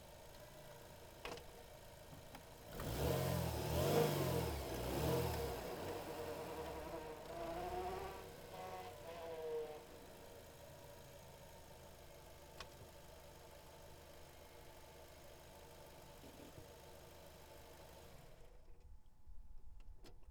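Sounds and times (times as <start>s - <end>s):
Honda Accord Type S engine in reverse gear recorded in engine bay: 2.7s - 10.0s.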